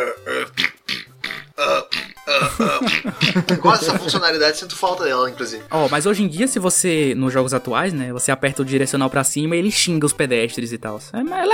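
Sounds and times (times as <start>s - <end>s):
person burping with throaty, gurgling, voiced belches: 0.0s - 3.9s
laughter: 2.3s - 6.0s
speech: 2.6s - 11.5s.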